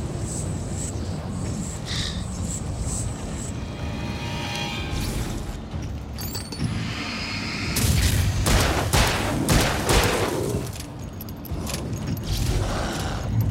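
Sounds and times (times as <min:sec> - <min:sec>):
zombie video game rumble: 0:00.0 - 0:13.4
pistol gunshots in a zombie video game: 0:08.4 - 0:10.5.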